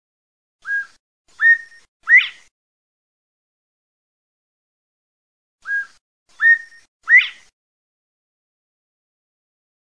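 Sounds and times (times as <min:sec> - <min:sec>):
partridge whistled call: 0:00.6 - 0:02.5, 0:05.6 - 0:07.5.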